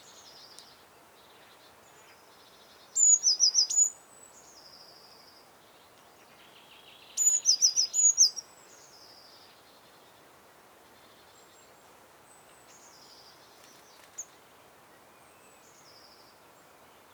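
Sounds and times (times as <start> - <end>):
quiet hiss: 0.0 - 17.1
Eurasian blue tit whistles and trills: 3.0 - 4.0, 7.2 - 8.4.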